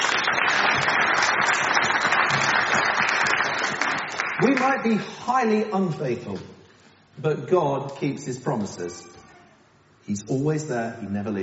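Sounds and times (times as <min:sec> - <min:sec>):
audience applause for a volunteer: 0:00.0 - 0:05.0
speech: 0:04.6 - 0:06.5, 0:07.2 - 0:09.2, 0:10.1 - 0:11.4.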